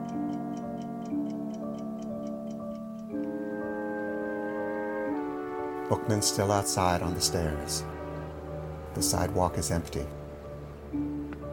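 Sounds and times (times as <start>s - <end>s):
clock ticking: 0.0s - 3.3s
sustained droning orchestral tones: 0.0s - 11.5s
speech: 5.9s - 8.0s, 9.0s - 10.2s.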